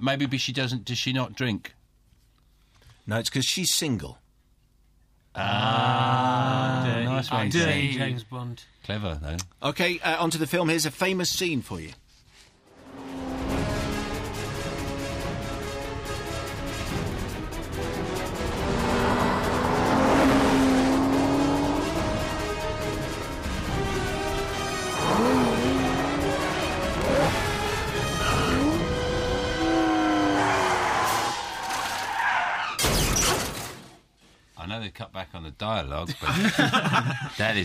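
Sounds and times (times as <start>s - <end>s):
speech: 0.0s - 1.8s, 3.1s - 4.2s, 5.4s - 12.0s, 35.5s - 37.6s
tires screeching and skidding in a car chase: 12.6s - 15.9s, 17.7s - 23.5s, 24.6s - 32.9s
car engines roaring and revving in a car chase: 12.6s - 31.8s
laughter: 36.1s - 37.4s.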